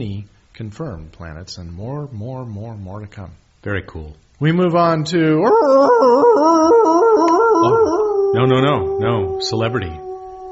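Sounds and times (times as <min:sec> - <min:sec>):
speech: 0:00.0 - 0:06.7, 0:07.6 - 0:10.1
dog howling: 0:05.4 - 0:10.5.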